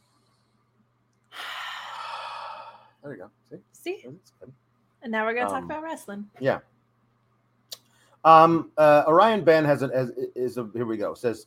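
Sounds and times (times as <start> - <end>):
group taking a collective deep cleansing breath: 1.3 - 3.0
speech: 3.0 - 6.7, 8.2 - 11.4.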